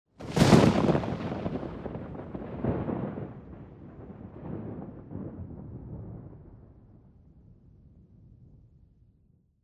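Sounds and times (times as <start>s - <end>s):
cracking thunder: 0.2s - 7.6s.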